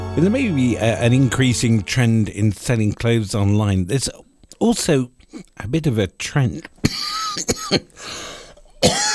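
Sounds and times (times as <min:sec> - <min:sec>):
speech: 0:00.1 - 0:09.1
radio presenter coughing on air: 0:06.8 - 0:07.9, 0:08.8 - 0:09.1.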